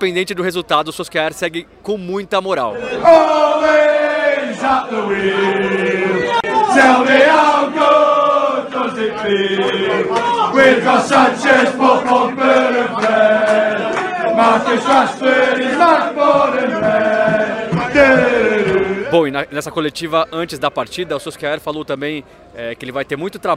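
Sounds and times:
speech: 0.0s - 3.9s, 4.6s - 8.2s, 8.8s - 17.2s, 18.0s - 23.5s
large crowd of football supporters singing a chant: 2.7s - 19.3s.

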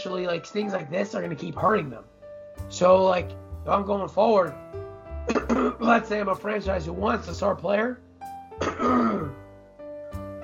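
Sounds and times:
speech: 0.0s - 4.7s, 5.5s - 8.0s, 8.7s - 9.4s
throat clearing: 5.3s - 5.9s, 8.6s - 9.4s.

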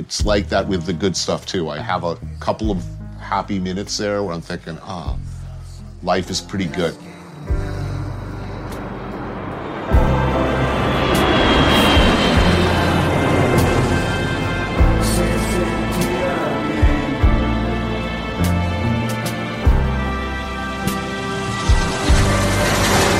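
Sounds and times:
speech: 0.0s - 5.4s, 6.0s - 7.6s
low-flying airplane engine roar passing overhead: 7.4s - 23.1s.

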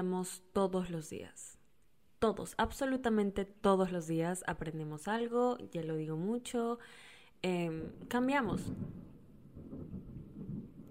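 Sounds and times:
speech: 0.0s - 1.6s, 2.2s - 9.1s
low rumble of thunder in a storm: 7.8s - 10.8s.

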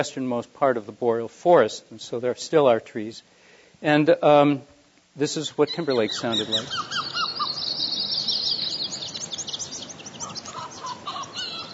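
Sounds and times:
speech: 0.0s - 7.0s
ground squirrel calling: 5.6s - 11.7s
tree and white-crowned sparrows singing: 5.6s - 11.7s.

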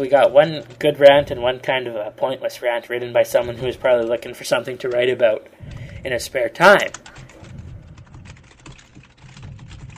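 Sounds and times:
speech: 0.0s - 7.2s
typing on a computer keyboard: 6.8s - 9.9s.

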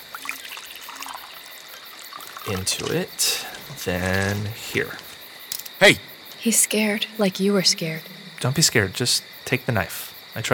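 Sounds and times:
water pouring into a glass: 0.0s - 4.7s
speech: 2.5s - 5.1s, 5.8s - 10.5s.

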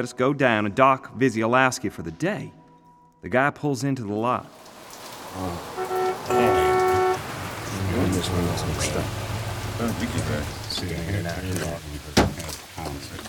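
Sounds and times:
speech: 0.0s - 2.6s, 3.2s - 6.6s, 7.9s - 13.2s
steady rain: 4.4s - 13.2s
voices: 6.3s - 13.2s.

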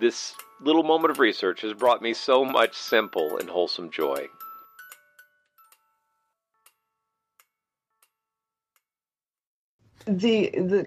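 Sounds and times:
speech: 0.0s - 4.4s, 10.0s - 10.8s
music-box-like melody of chiming tones from a toy teaching clock: 0.0s - 8.6s
toy teaching clock ticking: 0.0s - 8.9s.

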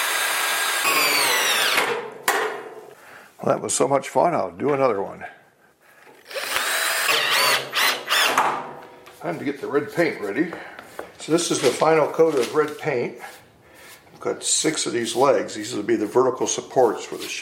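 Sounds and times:
power drill with socket fastening a tabletop to a metal workbench leg: 0.0s - 1.9s, 6.2s - 8.4s
speech: 3.4s - 5.4s, 9.2s - 13.4s, 14.2s - 17.4s.

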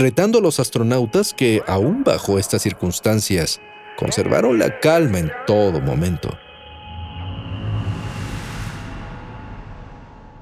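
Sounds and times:
speech: 0.0s - 6.4s
eerie whistling radio interference tones: 0.0s - 7.9s.

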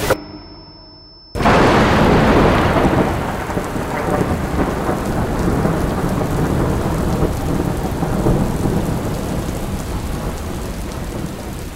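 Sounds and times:
heavy rain: 1.4s - 11.7s.

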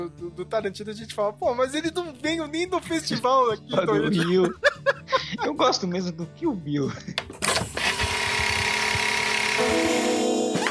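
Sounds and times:
speech: 0.0s - 7.2s
laughter: 3.0s - 5.9s, 6.9s - 7.3s
power tool whining: 7.4s - 10.7s.

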